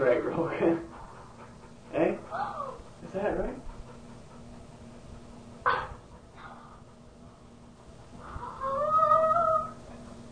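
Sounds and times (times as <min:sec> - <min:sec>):
speech: 0:00.0 - 0:00.9
low steady hum: 0:00.0 - 0:10.3
dog howling: 0:02.2 - 0:02.9, 0:08.2 - 0:10.0
dog yelping: 0:02.3 - 0:02.8, 0:08.2 - 0:09.8.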